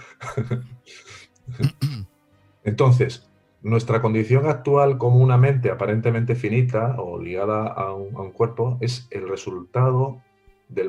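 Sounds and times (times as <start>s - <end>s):
speech: 0.4s - 10.8s
coughing and throat clearing: 1.5s - 2.1s.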